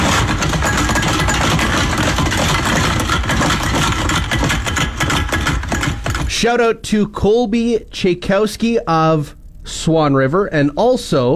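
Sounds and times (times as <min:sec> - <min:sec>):
recycling bottles shaken inside recycling bags at home: 0:00.0 - 0:06.4
speech: 0:06.4 - 0:11.3.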